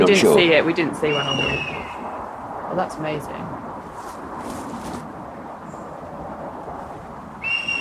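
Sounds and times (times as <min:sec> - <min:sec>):
speech: 0:00.0 - 0:03.6
constant rushing windy background: 0:00.0 - 0:07.8
bird flying and calling with a high whistle: 0:01.1 - 0:02.2, 0:07.4 - 0:07.8.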